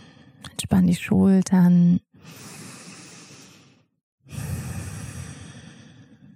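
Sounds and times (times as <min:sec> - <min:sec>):
slow deep breathing during a relaxation exercise: 0:00.0 - 0:00.4, 0:02.2 - 0:06.3
speech: 0:00.7 - 0:02.6.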